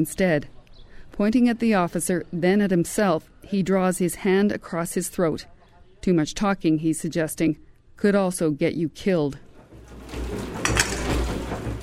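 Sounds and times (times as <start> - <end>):
speech: 0.0 - 9.5
dishes clattering faintly in a kitchen: 10.0 - 11.8
crockery clinking: 10.6 - 11.3.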